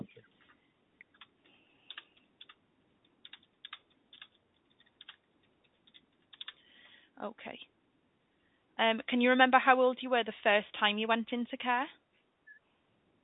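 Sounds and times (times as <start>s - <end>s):
typing on a computer keyboard: 1.0s - 1.3s, 1.9s - 6.6s
speech: 7.2s - 7.8s, 8.8s - 12.0s.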